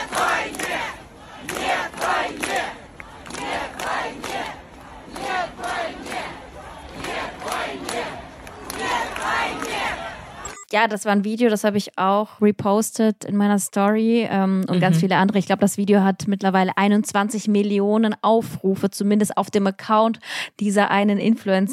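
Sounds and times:
crowd chanting a slogan at a demonstration in Moscow: 0.0 - 10.5
speech: 10.8 - 21.7.

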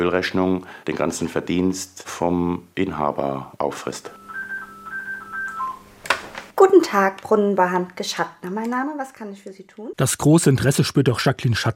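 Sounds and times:
speech: 0.0 - 4.2, 6.8 - 11.7
telephone ringing with a steady electronic tone: 4.0 - 6.0
telephone receiver lifted with a sharp clatter: 6.0 - 6.5.

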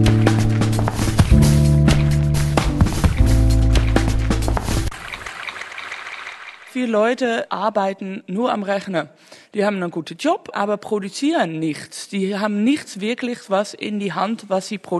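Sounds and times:
water sloshing and splashing: 0.1 - 6.8
speech: 6.8 - 14.9.

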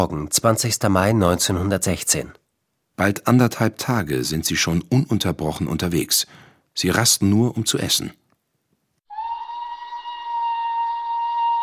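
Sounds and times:
speech: 0.0 - 2.4, 3.0 - 8.2
steam whistle blowing at a whaling station in the morning: 9.1 - 11.6.

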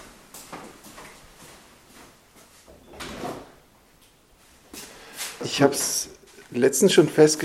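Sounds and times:
door opening and closing to let a cat out: 2.7 - 3.7
speech: 5.4 - 7.4.

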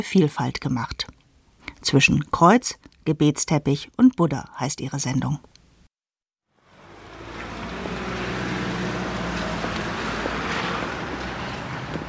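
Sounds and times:
speech: 0.0 - 1.1, 1.8 - 5.5
heavy trucks rushing past in an industrial area of Stuttgart-Wangen Germany: 6.6 - 12.0.

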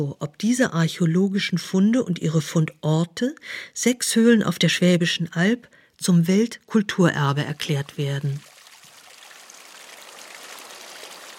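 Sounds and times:
speech: 0.0 - 8.5
small stream flowing: 7.4 - 11.3.

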